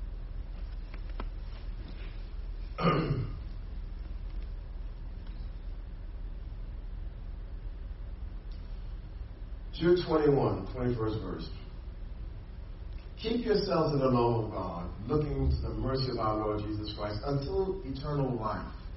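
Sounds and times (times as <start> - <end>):
steady low rumble of noise: 0.0 - 18.9
speech: 2.8 - 3.3, 9.8 - 11.6, 13.2 - 18.8
rough throat-clearing cough from a cold: 2.8 - 3.4.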